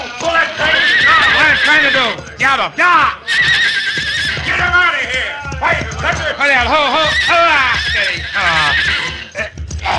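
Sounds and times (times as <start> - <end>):
bucking horse whinnying: 0.3 - 2.3, 3.2 - 4.7, 6.7 - 9.9
speech: 1.7 - 3.5, 5.2 - 9.1.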